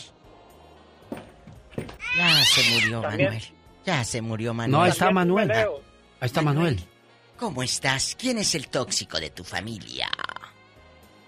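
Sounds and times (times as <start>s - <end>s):
cat meowing in short plaintive calls: 2.0s - 3.2s
speech: 2.2s - 10.2s.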